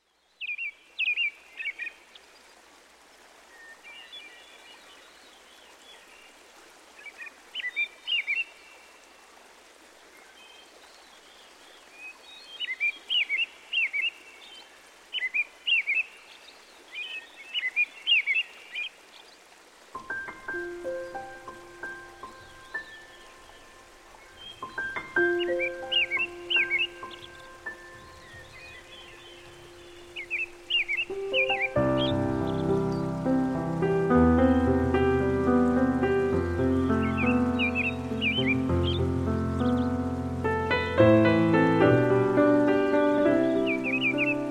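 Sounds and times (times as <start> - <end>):
forest nature sounds: 0.0 - 44.4
new age meditation piano music: 19.9 - 44.4.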